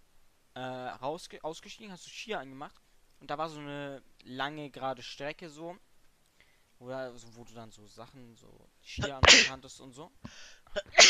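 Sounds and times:
speech: 0.6s - 5.9s, 6.8s - 11.0s
person sneezing: 9.0s - 9.6s, 10.8s - 11.0s.

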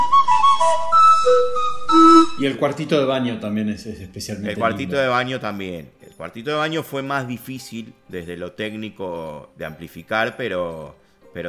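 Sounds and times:
tuned steam whistles of a steam-heated instrument playing a melody: 0.0s - 2.6s
speech: 2.4s - 11.4s.

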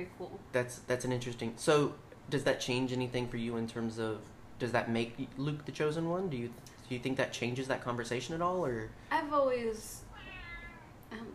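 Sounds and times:
speech: 0.0s - 10.0s
cat meowing: 10.1s - 11.0s.

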